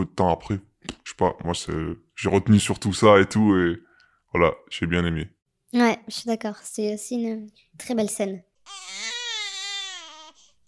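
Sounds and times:
speech: 0.0s - 8.5s
hungry baby wailing: 8.6s - 10.6s.

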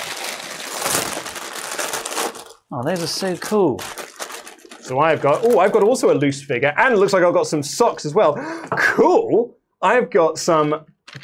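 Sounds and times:
plastic packaging being torn open and handled: 0.0s - 6.2s
speech: 2.7s - 4.0s, 4.9s - 10.9s.

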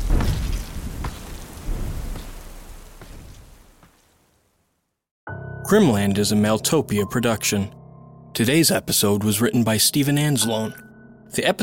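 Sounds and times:
steady rain hissing in a thunderstorm: 0.0s - 4.8s
speech: 5.7s - 7.8s, 8.4s - 11.6s.

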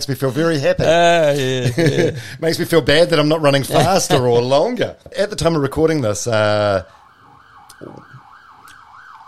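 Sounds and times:
speech: 0.0s - 7.0s, 7.8s - 8.1s
laughter: 0.2s - 2.4s, 3.4s - 4.8s
ambulance siren wailing outside: 6.5s - 9.2s.

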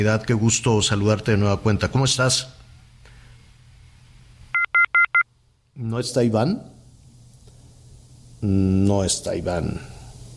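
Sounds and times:
speech: 0.0s - 2.6s, 5.8s - 6.7s, 8.4s - 9.9s
touch-tone dialing beeps: 4.6s - 5.2s.

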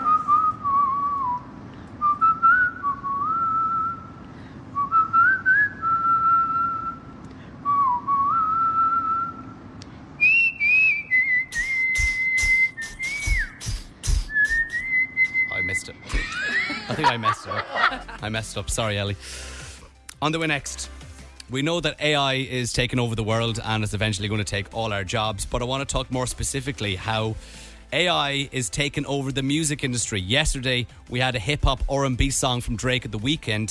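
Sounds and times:
woman whistling a catchy pop-style melody: 0.0s - 4.2s, 4.8s - 9.5s, 10.2s - 15.8s
laughter: 16.0s - 18.4s
speech: 17.1s - 17.6s, 18.2s - 19.5s, 20.2s - 20.9s, 21.5s - 33.6s.

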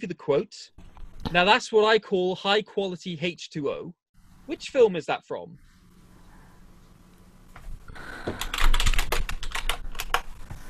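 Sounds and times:
speech: 0.0s - 5.7s
fast typing on a computer keyboard: 8.0s - 10.4s.

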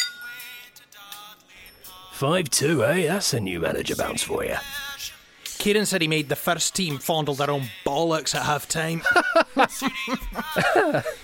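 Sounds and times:
beer glasses clinking together in a toast: 0.0s - 0.5s
speech: 2.2s - 4.8s, 5.6s - 11.2s
laughter: 9.0s - 11.2s.

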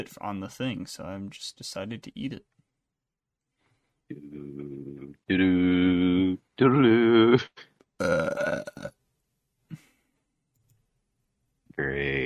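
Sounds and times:
speech: 0.0s - 2.6s, 4.1s - 9.0s
person burping: 6.9s - 9.0s.

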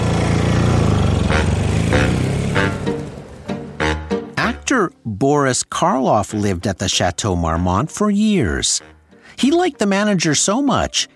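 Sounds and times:
motorcycle engine revving: 0.0s - 4.3s
speech: 4.8s - 11.1s.

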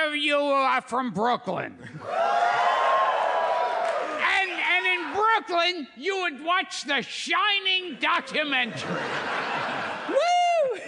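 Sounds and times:
speech: 0.1s - 2.4s, 5.4s - 10.3s
crowd cheering with scattered whoops: 2.0s - 5.2s, 9.2s - 10.8s
crowd applauding: 2.0s - 5.3s
laughter: 8.3s - 10.8s.

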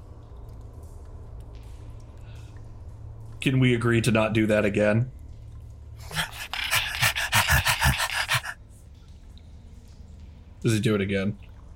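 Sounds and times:
speech: 3.4s - 5.2s, 10.6s - 11.5s
small dog panting: 6.0s - 8.6s.

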